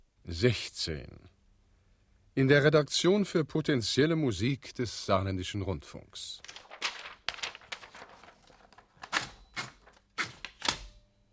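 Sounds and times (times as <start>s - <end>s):
speech: 0.3s - 1.3s, 2.4s - 6.6s
old mechanical typewriter keys clacking: 7.3s - 11.0s.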